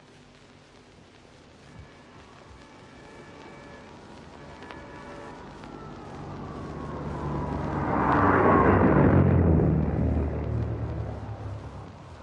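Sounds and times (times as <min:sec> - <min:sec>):
propeller-driven high-speed railcar passing at high speed on a test run: 0:06.2 - 0:11.9.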